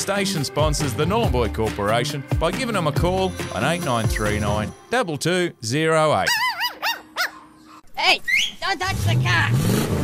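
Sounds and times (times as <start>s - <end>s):
speech: 0.0s - 6.5s, 8.0s - 9.8s
dog yelping: 6.3s - 7.9s
car engine starting and revving: 8.9s - 10.0s.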